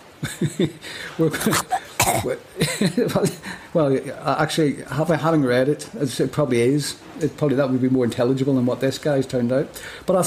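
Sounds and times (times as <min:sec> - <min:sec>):
speech: 0:00.2 - 0:10.2
person imitating coughing up a furball: 0:01.3 - 0:02.5.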